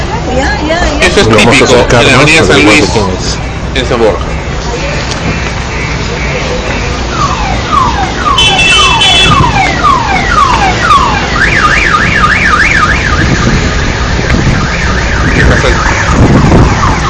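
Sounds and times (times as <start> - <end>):
steady street noise: 0.0 - 17.0
speech: 1.2 - 4.3
insistent car alarm blaring from a vehicle on an avenue in San Borja: 5.3 - 17.0.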